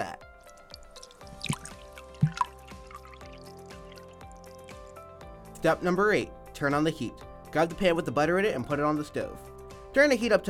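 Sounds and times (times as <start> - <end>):
milk splashing into eggs: 0.4 - 5.0
speech: 5.6 - 10.4.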